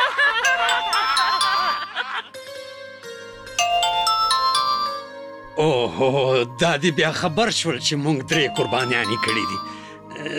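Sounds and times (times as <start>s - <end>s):
phone ringtone of chiming electronic notes: 0.4s - 2.3s, 3.3s - 5.7s, 8.3s - 10.0s
speech: 5.6s - 10.3s.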